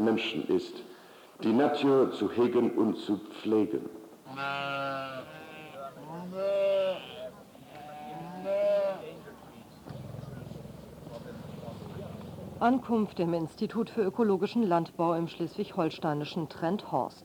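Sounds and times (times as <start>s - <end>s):
speech: 0.0s - 5.4s, 12.6s - 17.2s
sheep bleating on a farm at an institute for organic farming in Trenthorst: 4.3s - 9.3s
low steady outdoor rumble: 9.7s - 14.1s.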